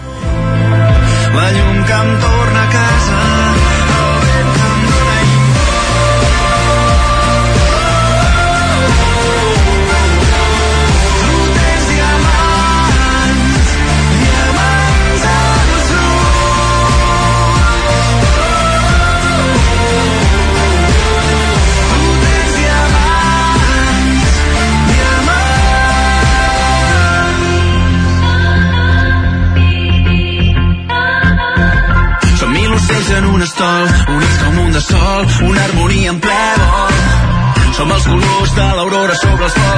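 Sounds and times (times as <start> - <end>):
Catalan pop song with synths and bass: 0.0 - 39.7
speech: 1.4 - 3.4.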